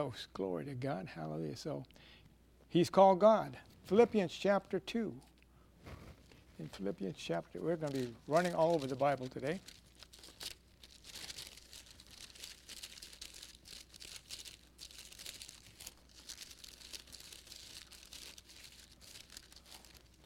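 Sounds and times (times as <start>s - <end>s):
speech: 0.0s - 6.0s, 6.6s - 9.8s
pages of an old Bible turning: 7.6s - 20.2s.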